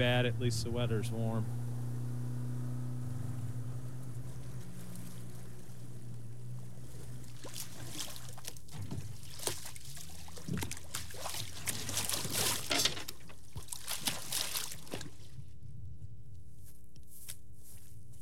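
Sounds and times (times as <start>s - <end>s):
speech: 0.0s - 1.6s
boat motor drone on the York River: 0.0s - 13.6s
choppy river water splashing and slapping against the boat hull on a breezy day: 3.1s - 15.5s.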